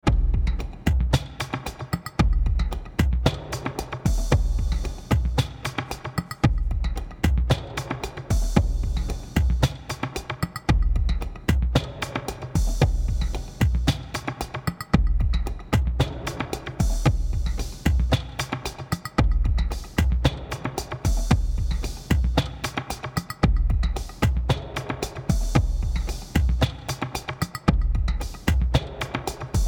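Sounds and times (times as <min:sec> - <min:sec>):
active groove music: 0:00.0 - 0:29.6.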